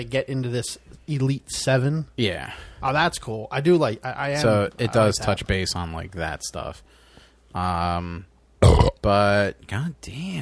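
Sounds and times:
speech: 0.0s - 10.3s
loud drawn-out burp with a low rumbling voiced tone: 8.6s - 9.1s.

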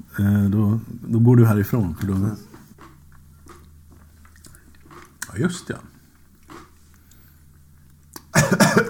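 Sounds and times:
speech: 0.2s - 2.5s, 5.4s - 5.9s
person coughing: 8.3s - 8.8s.

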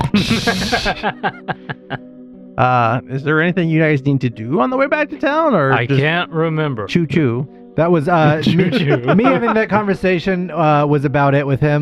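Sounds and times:
laughter: 0.0s - 2.0s, 5.7s - 6.2s, 8.2s - 10.0s
speech: 0.1s - 11.7s
person imitating a pig oinking: 5.8s - 6.1s.

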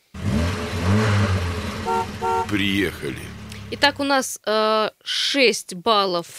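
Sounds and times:
car engine revving in traffic-report jingle: 0.0s - 4.1s
car horn honks in traffic-report jingle: 0.4s - 4.0s
speech: 2.5s - 6.3s.

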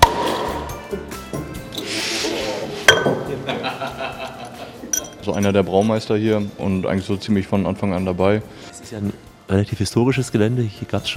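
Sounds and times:
speech: 0.9s - 1.1s, 3.5s - 4.2s, 5.2s - 11.1s
hiss of escaping gas from an opened craft beer bottle: 1.8s - 2.9s
glass craft beer bottle clinks and taps: 2.9s - 3.3s, 4.9s - 6.6s
laughter: 3.2s - 4.9s.

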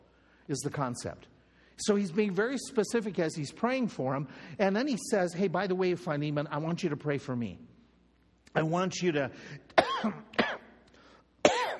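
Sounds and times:
speech: 0.5s - 7.7s, 8.5s - 10.3s
person coughing after a cough drop went down wrong: 9.7s - 10.8s, 11.4s - 11.7s.

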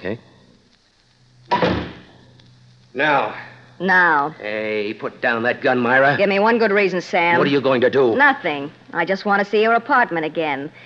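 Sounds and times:
speech: 0.0s - 0.3s, 2.9s - 10.8s
door shutting with a solid thud: 1.5s - 2.1s.

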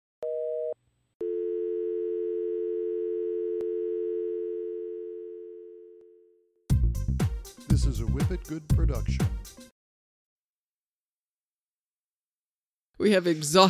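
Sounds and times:
telephone line tones after dialing a number not in service: 0.2s - 6.4s
speech: 7.8s - 9.7s, 13.0s - 13.6s.

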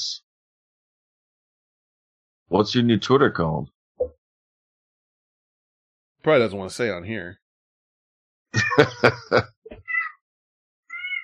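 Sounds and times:
speech: 2.5s - 4.2s, 6.2s - 7.4s, 8.8s - 9.6s
laughter: 8.6s - 9.5s
cat meowing: 9.8s - 10.2s, 10.9s - 11.2s.

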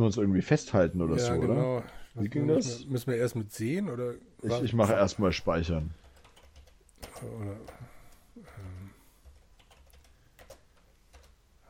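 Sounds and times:
speech: 0.0s - 6.0s, 7.0s - 8.7s
typing on a computer keyboard: 6.0s - 11.6s.

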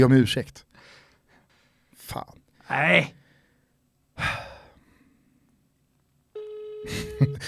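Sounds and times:
speech: 0.0s - 0.7s, 2.1s - 3.2s, 6.8s - 7.4s
person sighing heavily: 4.2s - 4.8s
electronic ringing tone of an outgoing phone call: 6.4s - 7.4s.

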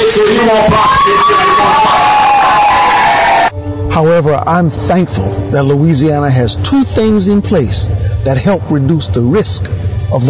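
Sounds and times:
large crowd of Democrats cheering and whooping at a political rally: 0.1s - 3.5s
speech: 4.0s - 10.2s.

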